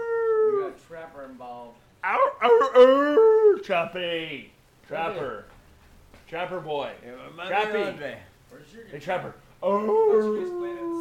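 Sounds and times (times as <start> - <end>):
dog howling: 0.0 - 0.8, 2.1 - 3.6, 9.6 - 10.9
speech: 3.7 - 5.5, 6.3 - 10.9.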